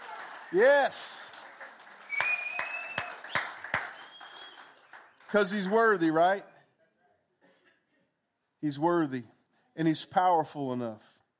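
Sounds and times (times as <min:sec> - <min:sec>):
crowd clapping hands in unison in praise to God: 0:00.0 - 0:06.4
speech: 0:00.5 - 0:01.2, 0:05.3 - 0:06.5, 0:08.6 - 0:11.1.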